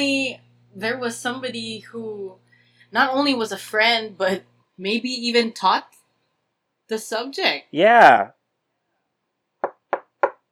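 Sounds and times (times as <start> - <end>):
speech: 0.0 - 6.0, 6.9 - 8.4
firm knocking on a door: 9.6 - 10.4.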